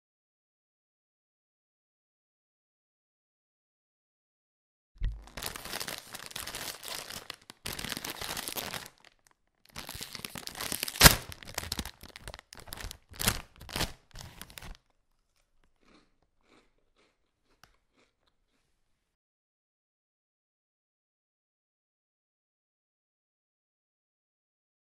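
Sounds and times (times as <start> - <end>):
pack of chips crinkling: 5.0 - 18.6.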